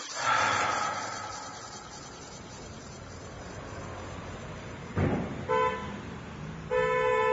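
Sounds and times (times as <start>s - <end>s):
busy city traffic rumbling: 0.3s - 7.3s
car horns honking: 5.4s - 7.3s.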